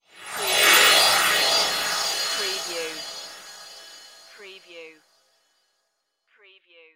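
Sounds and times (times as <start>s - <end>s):
magical twinkle whoosh: 0.0s - 4.8s.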